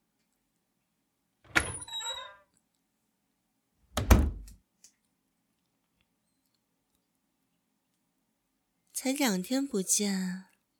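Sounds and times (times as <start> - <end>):
door being shut with a low heavy thud: 1.5 - 1.9, 4.0 - 4.6
speech: 9.0 - 10.5.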